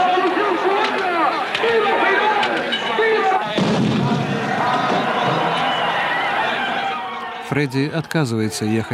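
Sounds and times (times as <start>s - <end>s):
noisy chattering crowd: 0.0s - 8.9s
fireworks salute bursts: 3.5s - 6.0s
speech: 7.5s - 8.9s.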